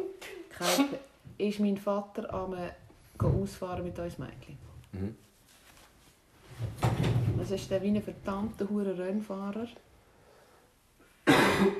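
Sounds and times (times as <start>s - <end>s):
speech: 0.6s - 5.3s, 6.6s - 9.9s
person coughing: 11.2s - 11.7s.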